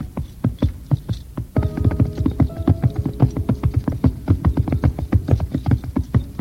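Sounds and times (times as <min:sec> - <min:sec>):
horses' hooves clopping as a small horse and a black steed ride off: 0:00.0 - 0:06.3
steady tonal hum: 0:01.6 - 0:06.3.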